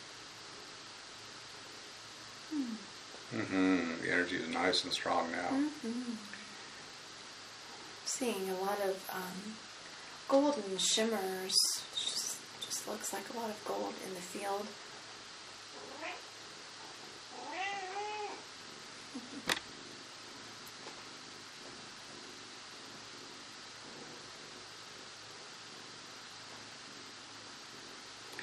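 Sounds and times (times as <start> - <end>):
steady low hiss: 0.0 - 28.4
speech: 2.5 - 6.4, 8.2 - 9.7, 10.3 - 12.0, 12.8 - 14.8
female cat meowing: 15.8 - 16.2, 17.3 - 18.4.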